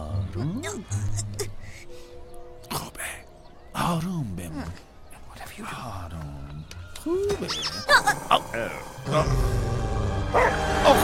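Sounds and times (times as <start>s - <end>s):
speech: 0.4s - 1.3s, 3.9s - 4.9s, 5.6s - 6.3s, 7.0s - 11.0s
dog barking: 10.3s - 10.6s.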